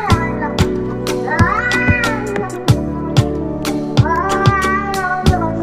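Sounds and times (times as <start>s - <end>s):
pounding rhythmic beat: 0.1s - 4.7s
cats meowing while being fed: 1.4s - 2.7s, 4.0s - 5.4s.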